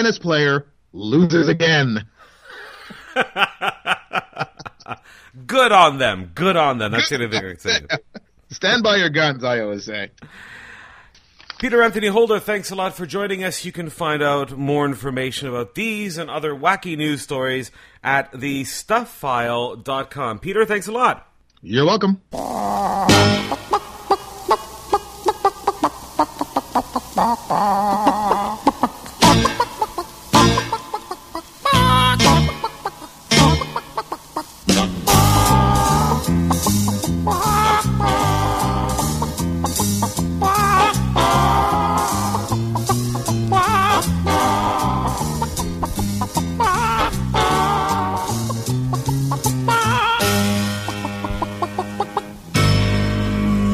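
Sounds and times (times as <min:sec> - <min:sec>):
speech: 0:00.0 - 0:02.1, 0:03.2 - 0:04.2, 0:04.9 - 0:10.6, 0:11.6 - 0:23.6, 0:26.8 - 0:29.0
chickens cackling and clucking: 0:22.4 - 0:53.7.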